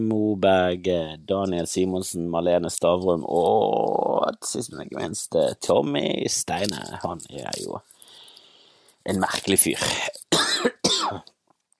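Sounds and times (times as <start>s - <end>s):
speech: 0.0s - 7.9s, 9.0s - 11.3s
person coughing with heavy rasping hacks: 10.3s - 11.3s.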